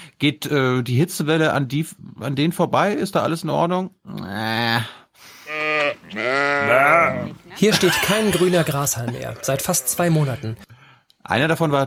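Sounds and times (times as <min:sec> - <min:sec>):
speech: 0:00.2 - 0:04.9, 0:06.1 - 0:11.8
sheep in Germany bleating during a heatwave: 0:05.4 - 0:07.4, 0:09.1 - 0:10.6
laughter: 0:07.5 - 0:10.6.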